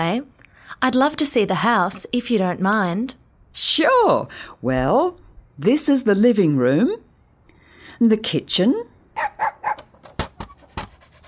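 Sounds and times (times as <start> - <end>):
speech: 0.0 - 7.0, 8.0 - 9.6
female pet dog huffing: 9.2 - 11.2
female pet dog panting: 10.5 - 11.2.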